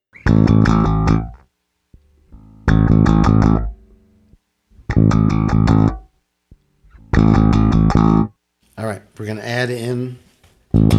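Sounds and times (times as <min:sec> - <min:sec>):
electric bass guitar playing with a clean tone: 0:00.1 - 0:08.3, 0:10.7 - 0:10.9
speech: 0:00.3 - 0:00.9.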